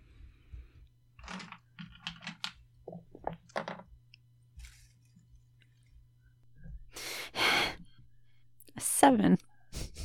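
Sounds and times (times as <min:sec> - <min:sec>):
dice tumbling down a dice tower: 0:01.2 - 0:03.9
speech: 0:08.8 - 0:09.5.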